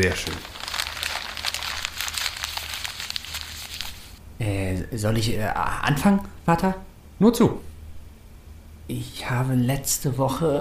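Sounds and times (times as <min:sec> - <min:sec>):
speech: 0:00.0 - 0:00.5, 0:04.4 - 0:07.7, 0:08.9 - 0:10.5
handwritten paper note crinkling and rustling: 0:00.0 - 0:04.2.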